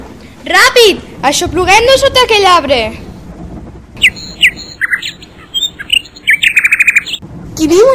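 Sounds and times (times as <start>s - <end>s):
speech: 0.4s - 3.1s, 7.7s - 7.9s
nightingale singing: 4.0s - 7.2s.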